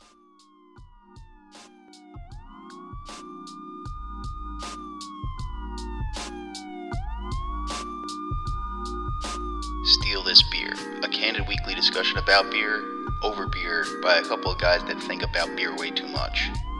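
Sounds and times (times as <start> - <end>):
police siren wailing: 0.0 - 16.7
pounding rhythmic beat: 0.0 - 16.7
speech: 9.9 - 16.6.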